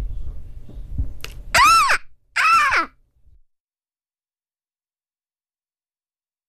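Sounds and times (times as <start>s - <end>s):
young girl imitating a seagull with squealing cries: 1.6s - 2.9s.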